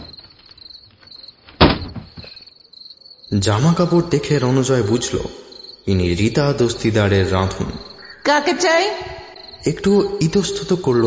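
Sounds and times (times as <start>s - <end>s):
door being opened: 0.0s - 2.5s
speech: 3.3s - 11.0s
faint steady high-pitched chirping: 4.9s - 10.9s.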